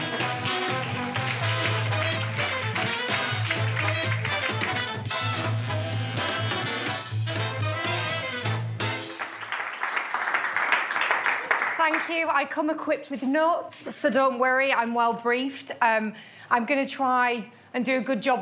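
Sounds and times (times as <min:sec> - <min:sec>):
crowd applauding: 0:00.0 - 0:07.0, 0:08.1 - 0:12.2
loud bass-heavy music: 0:00.0 - 0:09.2
speech: 0:11.9 - 0:18.4.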